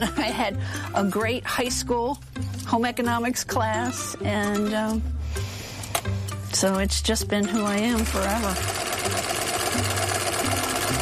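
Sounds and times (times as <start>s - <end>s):
speech: 0.0s - 5.5s, 6.5s - 8.8s
sewing machine stitching a nameplate onto a uniform: 7.5s - 10.9s.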